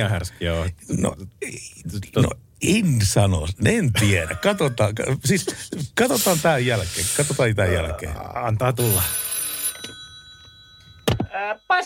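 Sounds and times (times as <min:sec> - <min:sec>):
speech: 0:00.0 - 0:09.3, 0:11.4 - 0:11.8
telephone bell ringing: 0:08.8 - 0:11.8.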